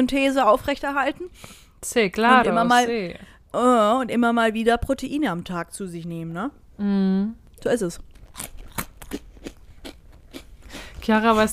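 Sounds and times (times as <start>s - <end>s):
speech: 0.0s - 9.2s, 11.1s - 11.5s
cracker being chewed quickly: 8.1s - 11.1s.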